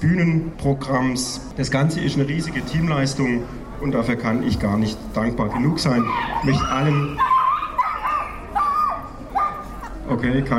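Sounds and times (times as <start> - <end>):
speech: 0.0 - 7.3, 10.1 - 10.5
small dogs barking and yelping: 5.4 - 10.1.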